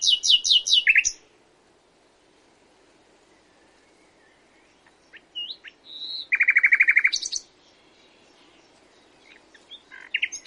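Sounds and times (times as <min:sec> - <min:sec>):
common nightingale singing varied phrases: 0:00.0 - 0:01.4, 0:03.3 - 0:10.4.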